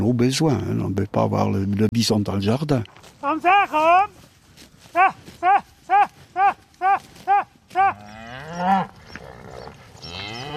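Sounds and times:
rustling outdoor noise: 0.0 - 10.5
speech: 0.1 - 4.2, 4.9 - 9.8
herd of cows mooing: 6.0 - 10.5.

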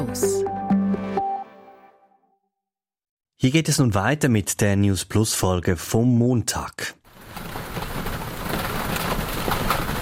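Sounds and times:
speech: 0.1 - 0.4, 3.4 - 7.5
low rumble of thunder: 7.1 - 10.0
steady rain hissing and pattering: 7.1 - 10.0.

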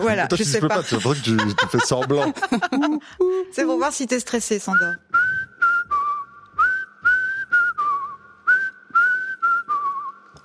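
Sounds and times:
speech: 0.0 - 5.2
laughter: 0.6 - 3.1
person whistling a short wavering tune with a slight tremolo: 4.7 - 10.4.

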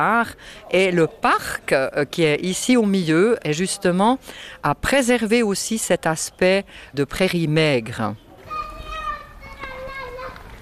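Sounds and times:
speech: 0.0 - 8.2
children playing and calling out on a park playground: 8.3 - 10.6.

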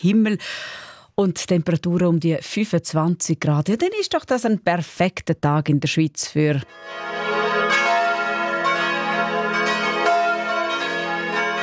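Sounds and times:
speech: 0.0 - 7.2
church bells in Switzerland ringing in an overlapping peal: 6.7 - 11.6.

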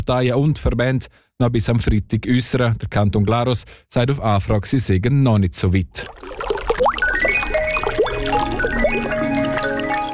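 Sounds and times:
speech: 0.1 - 6.9
water splashing and gurgling from a fountain: 6.0 - 10.1.

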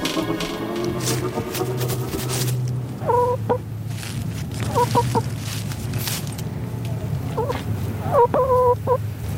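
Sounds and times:
hens clucking: 0.0 - 3.6, 4.6 - 5.4, 7.3 - 9.3
steady low rumble: 0.0 - 9.3.

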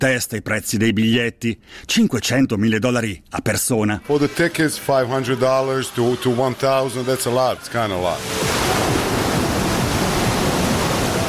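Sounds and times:
speech: 0.0 - 8.9
ocean waves lapping at a pier: 8.1 - 11.2.

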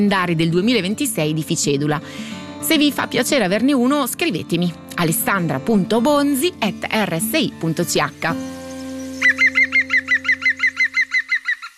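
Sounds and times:
speech: 0.0 - 8.6
green woodpecker laughing call: 8.7 - 11.7.

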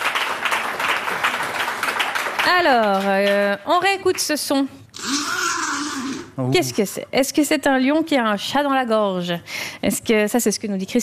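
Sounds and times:
applause: 0.0 - 4.3
speech: 2.5 - 5.2, 6.4 - 11.0.

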